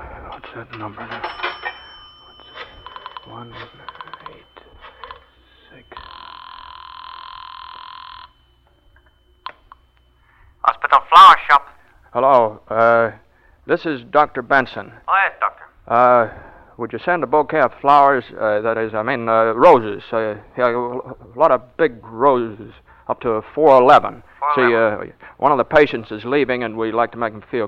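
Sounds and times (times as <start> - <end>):
telephone ringing: 0.8 - 11.7
steady telephone tone: 1.6 - 10.6
telephone being dialed: 2.4 - 5.3
speech: 12.2 - 12.5, 13.7 - 15.1, 15.9 - 27.6.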